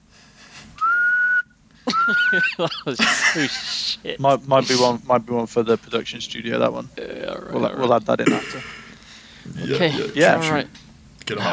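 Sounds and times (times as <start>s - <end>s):
person whistling a loud steady note: 0.8s - 2.6s
laughter: 1.8s - 10.7s
speech: 2.1s - 8.8s, 9.6s - 11.5s.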